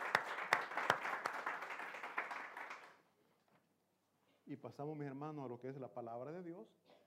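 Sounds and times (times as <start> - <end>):
crowd of people clapping together in a room: 0.0 - 3.0
speech: 4.5 - 6.9.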